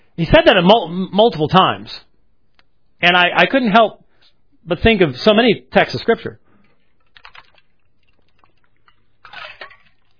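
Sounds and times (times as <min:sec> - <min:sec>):
speech: 0:00.2 - 0:02.1, 0:03.0 - 0:04.0, 0:04.6 - 0:06.4
person slurping sips of cold water with lemon from a glass: 0:06.6 - 0:10.1.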